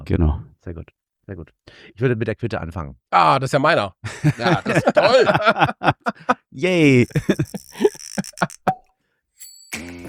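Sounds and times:
speech: 0.0s - 8.6s
beer bottle handling clicks: 6.9s - 8.9s.

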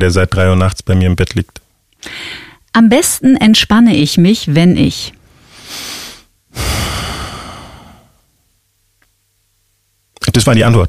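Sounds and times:
speech: 0.0s - 5.9s, 6.6s - 6.9s, 10.4s - 10.8s
deep breath in: 2.0s - 2.6s, 5.3s - 8.3s
heavy exhale: 5.4s - 8.3s.

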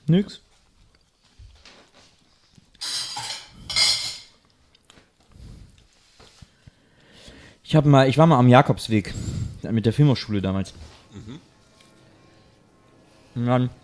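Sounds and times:
speech: 0.1s - 0.5s, 7.7s - 11.5s, 13.4s - 13.8s
metal cutlery clinking and scraping against dishes: 2.8s - 4.4s.

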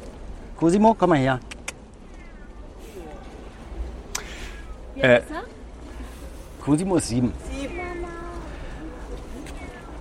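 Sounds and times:
speech: 0.6s - 1.5s, 5.0s - 5.5s, 6.6s - 7.5s
faint rustle: 1.2s - 9.9s
seven-year-old Savannah cat meowing: 2.1s - 2.6s.

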